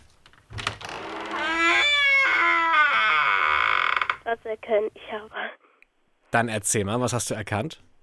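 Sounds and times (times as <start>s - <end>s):
door creaking: 0.2s - 4.4s
speech: 4.4s - 5.6s, 6.3s - 7.9s.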